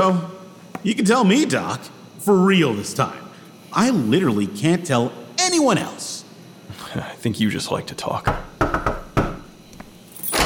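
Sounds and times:
speech: 0.1s - 6.2s, 6.9s - 9.0s
knocking on a door: 8.3s - 9.5s
door swinging open with a brief rushing sound: 10.2s - 10.4s.

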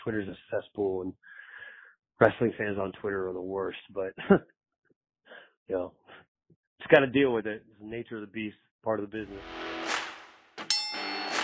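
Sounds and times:
speech: 0.0s - 1.4s, 2.2s - 4.6s, 5.7s - 9.6s
wrestling ring bell clanging: 10.7s - 11.4s.

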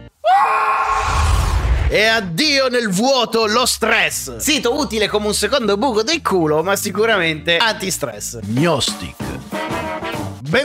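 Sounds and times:
recorded human scream played by website: 0.2s - 1.5s
speech: 1.9s - 9.3s.

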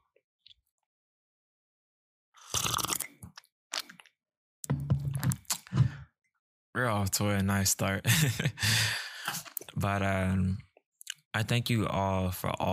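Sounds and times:
slurping coffee: 2.4s - 3.9s
speech: 6.8s - 10.7s, 11.4s - 12.7s.

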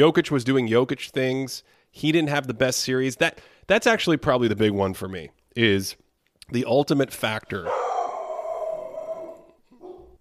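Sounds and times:
speech: 0.0s - 7.8s
dog howling: 7.6s - 10.1s.

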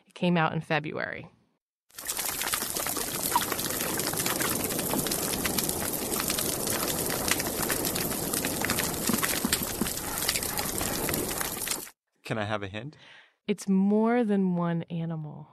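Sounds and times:
speech: 0.2s - 1.4s, 12.3s - 15.5s
grinding crunches of fish chewing on coral: 1.9s - 11.9s
underwater crackling and popping from a healthy coral reef: 1.9s - 12.0s.

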